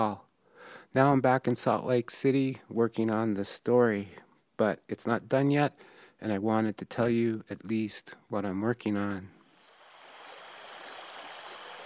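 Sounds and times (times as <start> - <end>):
speech: 0.0 - 0.2, 0.9 - 9.4
faint high chirps, likely insects: 9.4 - 11.8
river flowing at night: 9.5 - 11.8.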